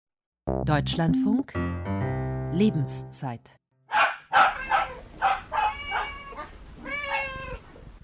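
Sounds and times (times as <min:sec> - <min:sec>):
speech: 0:00.7 - 0:01.9, 0:02.5 - 0:04.1
dog barking: 0:03.9 - 0:06.5, 0:07.1 - 0:07.3
drawn-out cat-like meows: 0:04.3 - 0:07.6.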